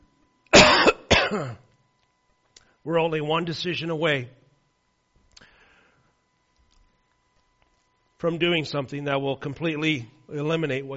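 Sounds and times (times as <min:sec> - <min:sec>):
harsh coughing from a tickle in the throat: 0:00.5 - 0:01.7
speech: 0:01.3 - 0:01.6, 0:02.8 - 0:04.4, 0:08.2 - 0:10.9.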